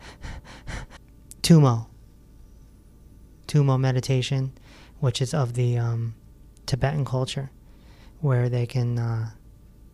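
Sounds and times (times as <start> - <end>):
person hyperventilating with rapid forceful panting: 0.0 - 1.1
speech: 1.5 - 1.9, 3.5 - 7.6, 8.2 - 9.4.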